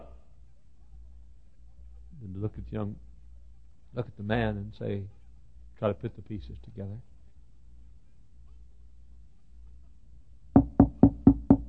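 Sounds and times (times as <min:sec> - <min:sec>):
speech: 0:02.4 - 0:03.1, 0:03.9 - 0:05.2, 0:05.8 - 0:07.1
knocking on a door: 0:10.6 - 0:11.6.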